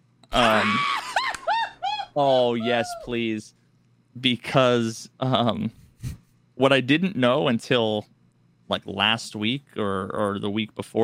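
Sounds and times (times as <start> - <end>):
man screaming: 0.3 - 3.1
warbling cries: 0.3 - 3.2
speech: 0.4 - 1.0, 2.2 - 3.6, 4.2 - 8.1, 8.7 - 11.0.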